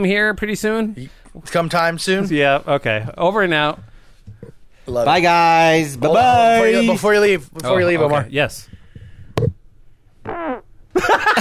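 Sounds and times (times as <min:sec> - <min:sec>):
speech: 0:00.0 - 0:03.9, 0:04.9 - 0:08.7, 0:11.0 - 0:11.3
sharp thump: 0:09.3 - 0:09.6
man farting into a microphone: 0:10.2 - 0:10.7.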